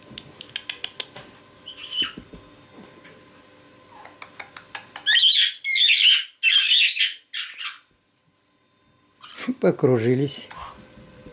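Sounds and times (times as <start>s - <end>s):
Red-headed caique squawking while playing: 1.6s - 2.2s, 3.9s - 7.9s, 9.2s - 9.5s
speech: 9.6s - 10.6s.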